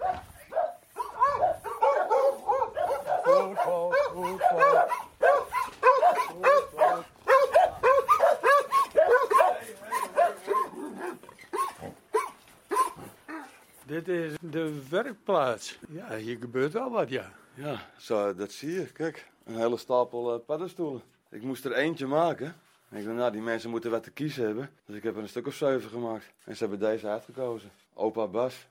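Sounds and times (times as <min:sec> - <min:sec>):
several dogs barking and yipping excitedly: 0:00.0 - 0:13.7
speech: 0:14.4 - 0:28.6.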